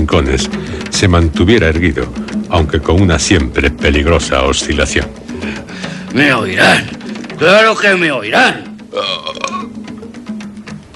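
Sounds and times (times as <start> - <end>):
speech: 0.1 - 5.2, 6.1 - 9.4
man belching deeply: 8.5 - 9.9.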